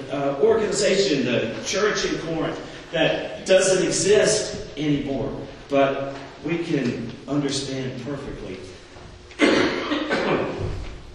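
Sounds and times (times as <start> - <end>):
speech: 0.1 - 8.8
person with allergies coughing: 9.4 - 10.7.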